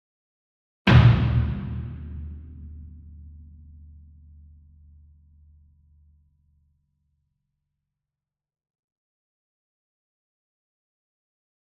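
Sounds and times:
40 inch concert bass drum hit hard with beater: 0:00.9 - 0:02.8.

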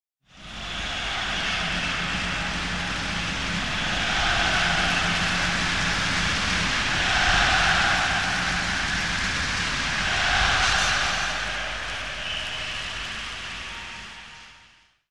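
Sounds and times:
very large sports stadium crowd shouting rhythmically: 0:00.7 - 0:12.2.

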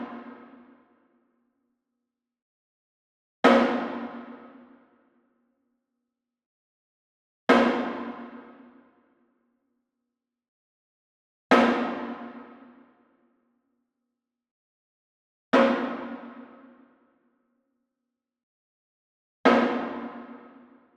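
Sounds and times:
wooden floor drum hit with beater: 0:03.5 - 0:04.5, 0:07.5 - 0:08.5, 0:11.5 - 0:12.5, 0:19.5 - 0:20.4.

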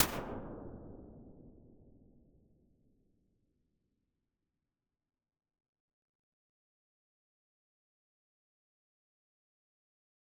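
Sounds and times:
large damping cave impulse response: 0:00.0 - 0:02.3.

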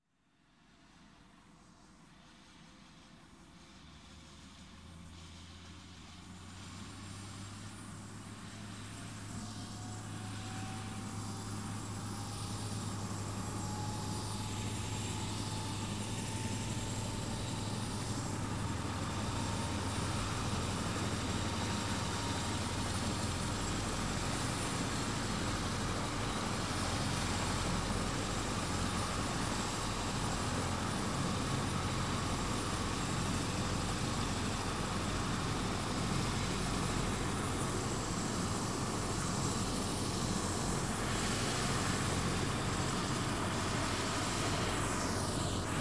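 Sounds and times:
helicopter starting up: 0:09.2 - 0:45.7.

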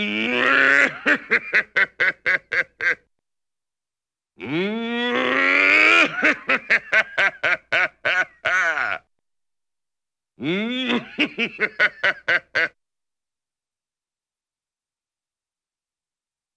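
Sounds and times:
cartoon evil villainous laugh: 0:00.1 - 0:03.1, 0:05.6 - 0:09.1, 0:10.4 - 0:12.8.

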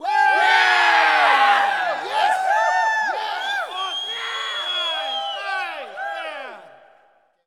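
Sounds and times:
hockey players cheering: 0:00.0 - 0:07.0.

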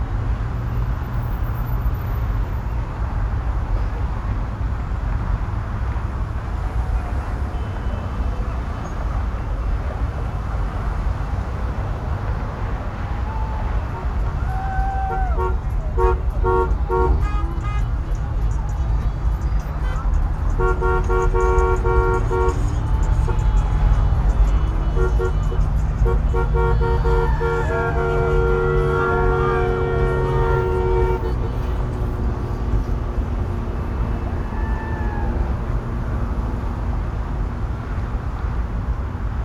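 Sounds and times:
urban traffic: 0:00.0 - 0:39.4
car horns in urban traffic: 0:06.8 - 0:09.7, 0:10.3 - 0:35.3
people shouting: 0:12.8 - 0:32.0, 0:33.9 - 0:35.7.

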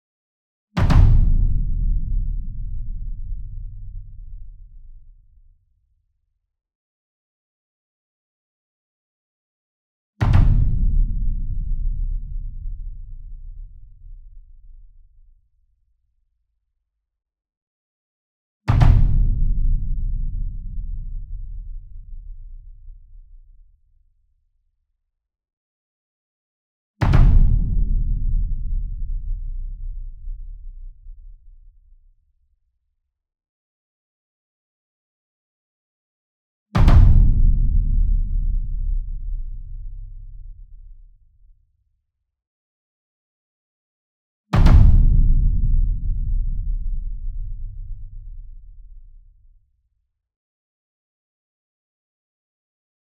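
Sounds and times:
single 66 inch drum hit with double hard beater: 0:00.8 - 0:04.0, 0:10.2 - 0:13.2, 0:18.7 - 0:21.7, 0:27.0 - 0:31.1, 0:36.8 - 0:40.7, 0:44.6 - 0:48.8.

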